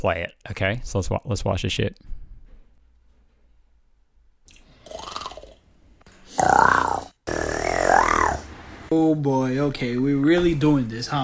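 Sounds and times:
speech: 0:00.0 - 0:02.2, 0:08.9 - 0:11.2
young man growling: 0:06.2 - 0:08.5.

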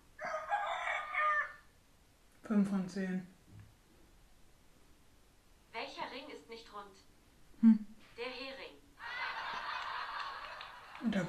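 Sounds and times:
rooster crowing: 0:00.2 - 0:01.7
speech: 0:02.5 - 0:03.4, 0:07.0 - 0:07.8
laughter: 0:09.0 - 0:11.2.

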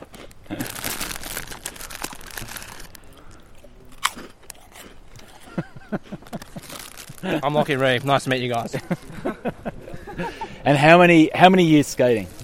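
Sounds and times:
crunching and chewing of crisp food against the microphone outdoors: 0:00.0 - 0:08.8, 0:12.1 - 0:12.4
laughter: 0:05.2 - 0:10.7
speech: 0:07.2 - 0:09.2, 0:10.6 - 0:12.4.

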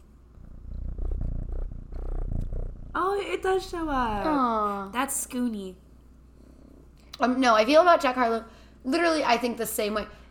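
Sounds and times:
cat purring: 0:00.3 - 0:04.4
speech: 0:03.0 - 0:05.8, 0:07.2 - 0:10.2.

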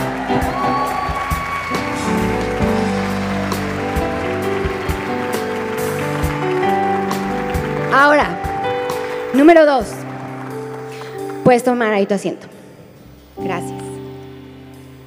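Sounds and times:
sustained musical tones: 0:00.0 - 0:11.5
large crowd clapping loudly: 0:00.0 - 0:11.9
speech: 0:09.4 - 0:10.0, 0:11.5 - 0:12.5, 0:13.4 - 0:13.8.

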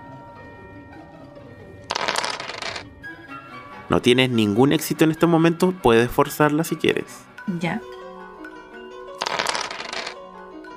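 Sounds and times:
six dice rattling and tumbling: 0:01.9 - 0:02.8, 0:09.2 - 0:10.2
speech: 0:03.9 - 0:08.0.

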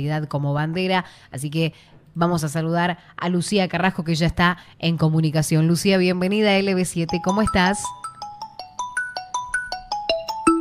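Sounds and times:
speech: 0:00.0 - 0:08.0
phone ringing with a melodic electronic ringtone: 0:07.0 - 0:10.5.

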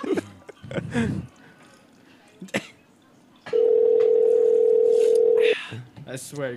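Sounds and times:
telephone dial tone while calling someone back: 0:03.6 - 0:05.4.

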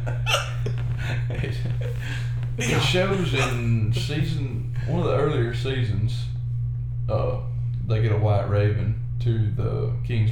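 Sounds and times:
laughter: 0:00.0 - 0:05.4
steady low hum: 0:00.0 - 0:10.3
man hiccuping after laughing: 0:00.2 - 0:00.7, 0:02.6 - 0:03.9
speech: 0:02.6 - 0:06.3, 0:07.1 - 0:10.3.

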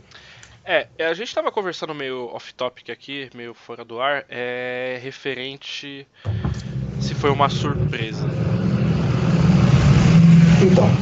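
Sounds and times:
speech: 0:00.7 - 0:08.7, 0:10.6 - 0:11.0
heavy truck passing on the street: 0:06.3 - 0:11.0.

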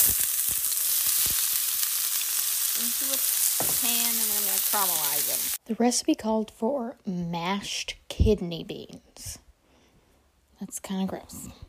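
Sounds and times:
onions sizzling as they fry in a pan: 0:00.0 - 0:05.6
speech: 0:02.8 - 0:09.4, 0:10.6 - 0:11.6.

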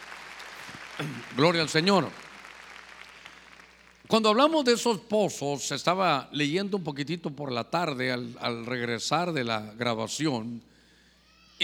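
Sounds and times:
audience clapping hands loudly: 0:00.0 - 0:04.1
speech: 0:01.0 - 0:02.2, 0:04.1 - 0:10.7.

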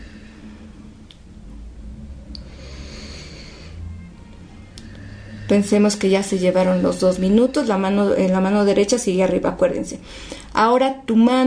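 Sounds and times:
soft slow breathing close to the mic: 0:00.0 - 0:08.0, 0:10.0 - 0:10.6
low steady hum: 0:00.0 - 0:11.4
speech: 0:05.5 - 0:11.4.

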